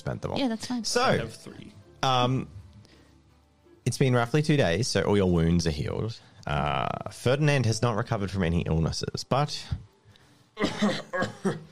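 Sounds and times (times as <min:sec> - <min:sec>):
speech: 0:00.0 - 0:02.6, 0:03.9 - 0:09.9, 0:10.6 - 0:11.7
person with a lingering cough coughing: 0:10.6 - 0:11.7.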